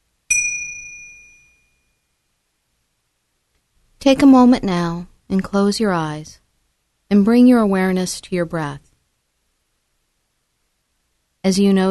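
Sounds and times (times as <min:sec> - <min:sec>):
meditation chime ringing: 0:00.3 - 0:02.2
speech: 0:04.0 - 0:06.4, 0:07.1 - 0:08.9, 0:11.4 - 0:11.8.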